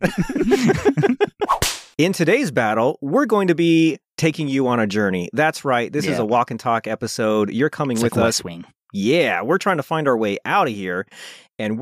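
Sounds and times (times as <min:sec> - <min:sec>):
speech: 0:00.0 - 0:00.9, 0:02.0 - 0:11.7
laughter: 0:00.0 - 0:01.5
whip crack sound effect: 0:01.4 - 0:02.0
bouncy sing-song vocal sounds: 0:06.0 - 0:06.3, 0:07.8 - 0:08.7.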